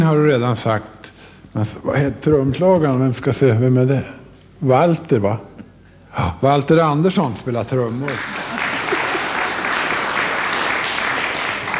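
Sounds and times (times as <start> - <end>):
speech: 0.0 - 5.5, 6.1 - 8.4
crowd clapping loudly: 7.8 - 11.7.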